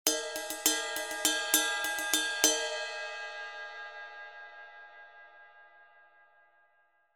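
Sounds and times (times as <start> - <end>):
20in Custom Medium Ride cymbal: 0.1 - 3.0.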